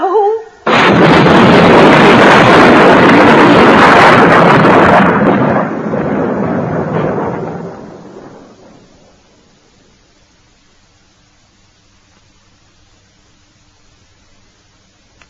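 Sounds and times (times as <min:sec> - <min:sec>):
thunder clap from an electric storm with lightning: 0:00.6 - 0:09.9.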